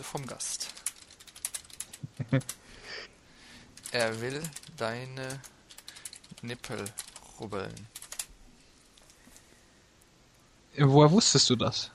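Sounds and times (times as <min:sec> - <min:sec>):
speech: 0:00.0 - 0:00.8, 0:02.1 - 0:02.6, 0:03.9 - 0:05.5, 0:06.4 - 0:08.0, 0:10.8 - 0:11.9
typing a message on a computer keyboard: 0:00.0 - 0:02.6, 0:03.7 - 0:08.3.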